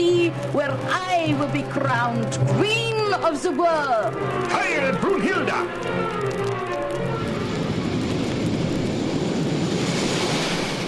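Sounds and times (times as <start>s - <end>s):
speech: 0.0s - 6.7s
airplane roaring past at high speed: 4.0s - 10.8s.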